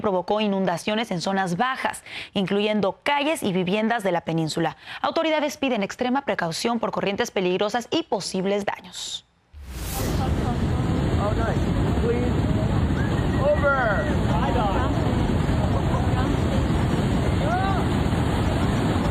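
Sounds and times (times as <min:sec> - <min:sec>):
speech: 0:00.0 - 0:09.3, 0:11.2 - 0:12.2
powerful ocean waves crashing against a jetty at Newport Beach: 0:09.6 - 0:19.1
wind buffeting: 0:09.6 - 0:19.1.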